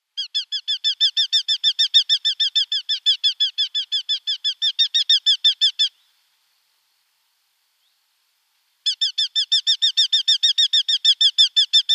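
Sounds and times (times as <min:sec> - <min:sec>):
Eurasian hobby Falco subbuteo calling: 0:00.1 - 0:06.1, 0:08.8 - 0:11.9.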